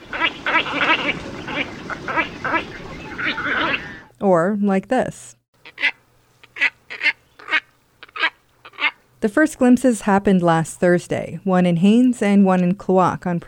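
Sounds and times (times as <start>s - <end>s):
large heron-sized wading bird with down-curved bill giving hoarse nasal grunts: 0.0s - 4.1s, 5.6s - 9.1s
soft hiss: 4.1s - 13.2s
speech: 4.2s - 5.4s, 9.2s - 13.4s.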